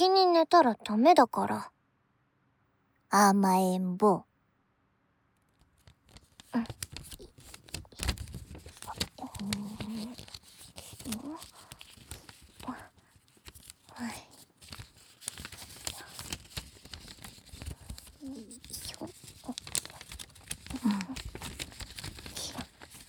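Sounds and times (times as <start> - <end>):
speech: 0.0 - 1.8, 3.1 - 4.3, 6.5 - 6.8
origami paper being folded and handled: 5.5 - 23.0.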